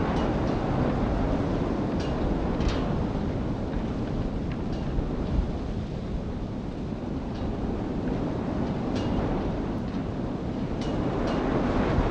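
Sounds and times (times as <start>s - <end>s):
wind in a city: 0.0s - 12.0s.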